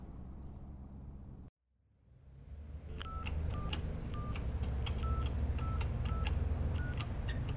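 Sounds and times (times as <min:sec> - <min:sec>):
burner phone keypad buttons pressed with short tone beeps: 0:03.0 - 0:07.4.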